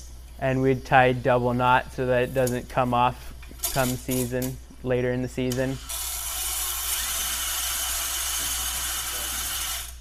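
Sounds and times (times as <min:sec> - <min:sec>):
speech: 0:00.4 - 0:05.9
power drill whirring while winding up string: 0:05.8 - 0:09.9.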